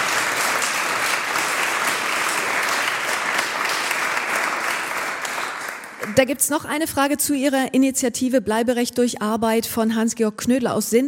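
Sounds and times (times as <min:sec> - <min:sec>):
audience applause of many hands clapping: 0:00.0 - 0:06.3
speech: 0:06.2 - 0:11.0.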